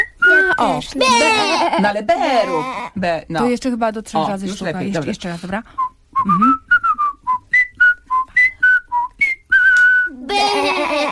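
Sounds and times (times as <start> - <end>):
person whistling: 0.0 - 0.6, 5.8 - 10.2
speech: 0.6 - 6.6.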